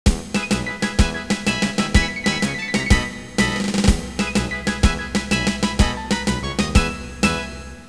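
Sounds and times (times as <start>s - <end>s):
march music: 0.1s - 7.8s.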